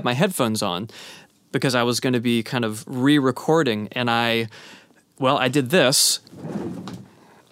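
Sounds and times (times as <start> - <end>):
speech: 0.0 - 6.8
office chair rolling across a hard floor: 6.3 - 7.1.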